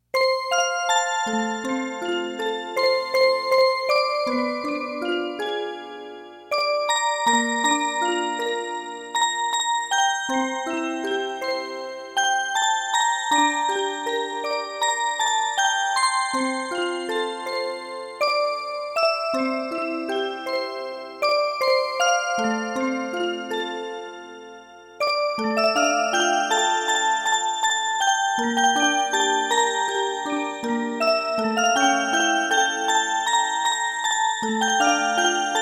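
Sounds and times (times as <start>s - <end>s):
music box: 0.2s - 35.6s.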